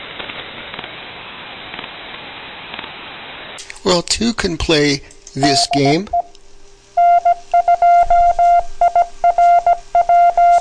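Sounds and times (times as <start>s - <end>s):
speech: 3.8s - 6.2s
telephone touch-tone dialing beeps: 5.4s - 6.3s, 7.0s - 10.5s.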